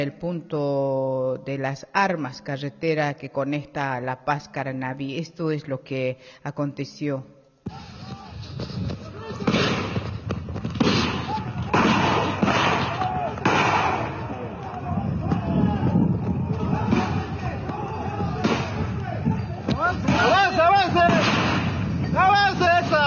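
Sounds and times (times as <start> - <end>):
speech: 0.0 - 8.9
people shouting and yelling: 7.7 - 8.4, 9.0 - 9.8, 10.9 - 23.0
police firing tear gas and rubber bullets: 9.2 - 23.0
loud crowd noise of protesters: 10.9 - 23.0.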